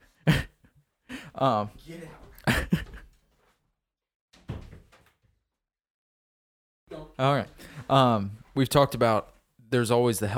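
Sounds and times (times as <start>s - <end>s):
speech: 1.4s - 2.7s, 7.2s - 10.3s
door opening: 4.4s - 5.2s.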